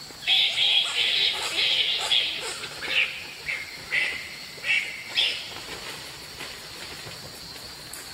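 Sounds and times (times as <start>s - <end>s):
steady hiss: 0.0s - 8.1s
fruit bat call with shrill squeaky chirps and chatters: 0.2s - 5.4s.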